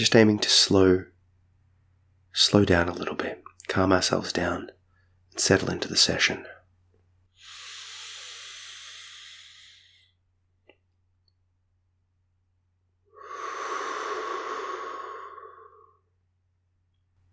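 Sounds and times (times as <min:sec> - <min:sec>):
speech: 0:00.0 - 0:01.1, 0:02.4 - 0:04.8, 0:05.4 - 0:06.6
deep slow breathing in a guided calming session: 0:07.3 - 0:10.2, 0:13.1 - 0:16.2.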